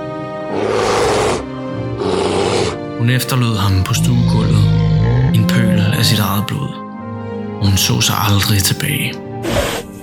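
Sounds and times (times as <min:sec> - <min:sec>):
brown bear roaring: 0:00.4 - 0:03.0, 0:03.6 - 0:06.8
speech: 0:03.0 - 0:06.8, 0:07.6 - 0:09.7.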